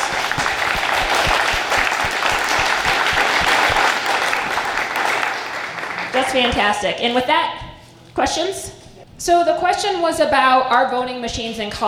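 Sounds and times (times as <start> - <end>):
audience applause: 0.0 - 6.6
speech: 6.3 - 7.6, 8.2 - 11.8.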